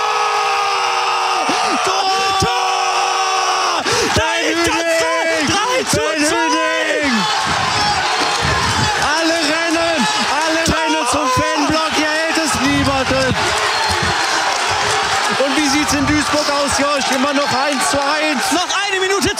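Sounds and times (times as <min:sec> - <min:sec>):
football fans in stadium roaring after a goal: 0:00.0 - 0:19.3.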